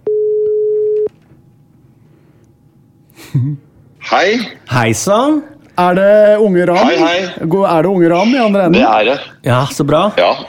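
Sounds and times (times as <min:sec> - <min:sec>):
telephone ringback tone while placing a call: 0:00.1 - 0:01.1
speech: 0:03.4 - 0:10.4.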